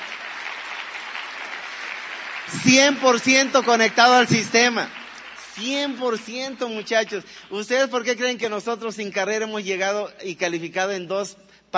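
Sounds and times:
audience applause: 0.0s - 7.7s
speech: 2.5s - 5.0s, 5.6s - 11.7s.

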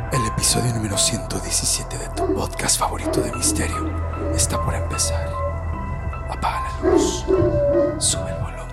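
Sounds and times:
speech: 0.1s - 5.5s, 6.4s - 8.6s
dog barking: 2.2s - 5.0s, 6.7s - 8.2s.

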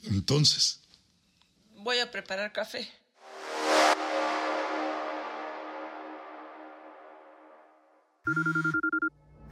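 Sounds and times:
speech: 0.1s - 0.8s, 1.9s - 3.0s, 8.3s - 8.8s
wash of noise: 3.3s - 7.7s
telephone ringing with warbling electronic rings: 8.3s - 9.1s.

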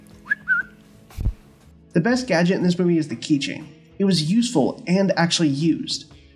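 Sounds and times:
person whistling a brief two-note phrase: 0.2s - 0.8s
dull low thump: 1.1s - 1.4s
speech: 2.0s - 6.2s.

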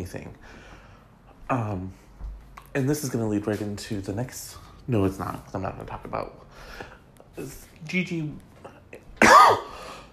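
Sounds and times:
speech: 0.0s - 0.7s, 1.5s - 2.0s, 2.8s - 9.6s
single sharp cough: 9.2s - 10.0s.

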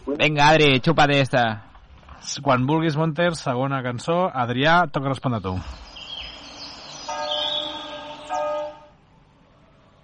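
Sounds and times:
speech: 0.1s - 5.8s
bells ringing in a song intro: 6.6s - 8.7s.

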